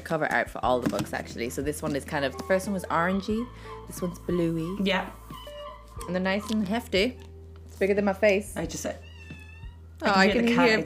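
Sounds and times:
speech: 0:00.1 - 0:05.4, 0:06.0 - 0:09.1, 0:10.0 - 0:10.8
domestic cat meowing: 0:08.9 - 0:10.2.

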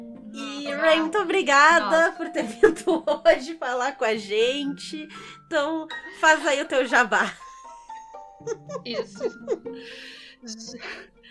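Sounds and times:
speech: 0:00.6 - 0:07.4, 0:08.4 - 0:11.2
laughter: 0:02.0 - 0:03.6, 0:08.4 - 0:09.6
person crying and whimpering: 0:08.5 - 0:11.2.

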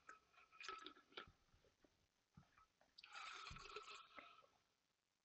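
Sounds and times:
people quietly sipping bourbon: 0:00.6 - 0:01.3, 0:03.0 - 0:04.5.

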